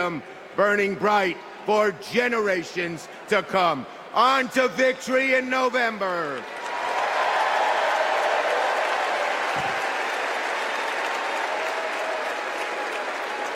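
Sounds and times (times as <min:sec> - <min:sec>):
speech: 0:00.0 - 0:06.6
large convention crowd applauding in an indoor arena: 0:06.4 - 0:13.5.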